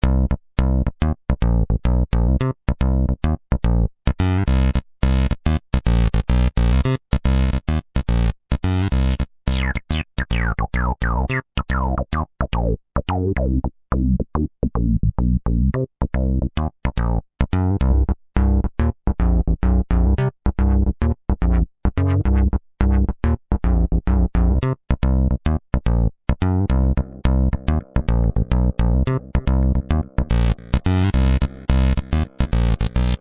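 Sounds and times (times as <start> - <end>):
hard pulsing bass: 0.0 - 33.1.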